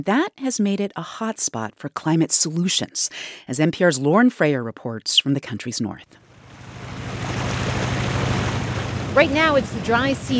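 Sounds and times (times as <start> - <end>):
speech: 0.0 - 6.2, 9.2 - 10.3
25-foot wooden boat wash through a muddy river in Bangladesh: 6.3 - 10.3.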